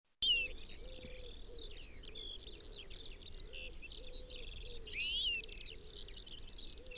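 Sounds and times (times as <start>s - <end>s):
European goldfinch Carduelis carduelis giving a loud harmonically rich call: 0.2s - 0.5s
busy chorus of small birds twittering: 0.2s - 3.4s, 4.5s - 6.4s.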